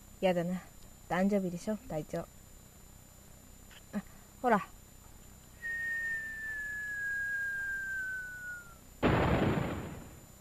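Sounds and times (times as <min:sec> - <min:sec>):
speech: 0:00.2 - 0:02.4, 0:03.9 - 0:04.8
winter firework whistling: 0:05.6 - 0:10.3
winter firework bursting with a crackling bang: 0:09.0 - 0:10.3.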